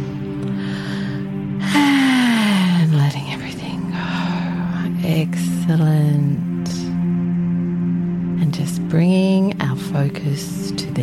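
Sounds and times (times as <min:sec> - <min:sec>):
steady sustained musical drone: 0:00.0 - 0:11.0
deep breath drawn in through the nose or mouth: 0:00.5 - 0:02.6.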